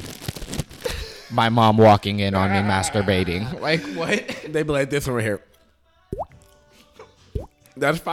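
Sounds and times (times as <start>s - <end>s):
speech: 1.3s - 5.5s, 7.8s - 8.1s
mouth imitating water drop as ASMR: 6.1s - 6.4s, 7.4s - 7.6s.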